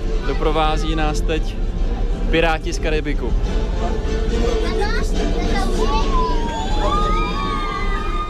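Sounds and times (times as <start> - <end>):
speech: 0.3 - 1.7, 2.3 - 7.2
children shouting and squealing excitedly on an amphibious bus: 4.5 - 8.2.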